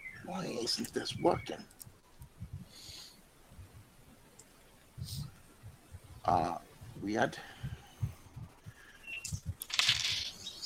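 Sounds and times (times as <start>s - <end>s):
speech: 0.3s - 1.8s, 6.3s - 7.5s
homemade dice roller thumping: 9.6s - 10.4s.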